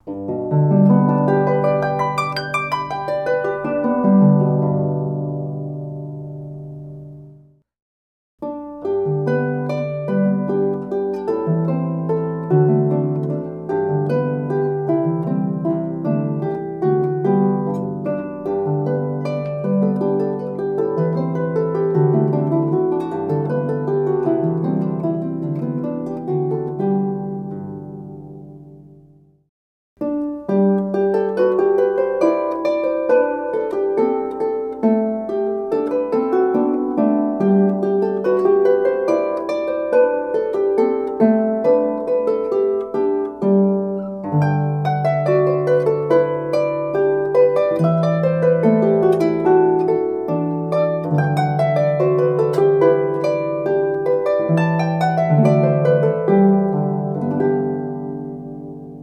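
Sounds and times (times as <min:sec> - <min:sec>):
29-string harp: 0:00.0 - 0:07.7, 0:08.4 - 0:29.3, 0:30.0 - 0:59.0.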